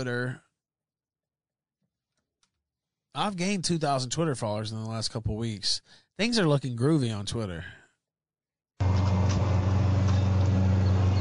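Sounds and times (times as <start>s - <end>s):
speech: 0.0s - 0.4s, 3.2s - 7.8s
truck engine rumbling while driving past: 8.8s - 11.1s.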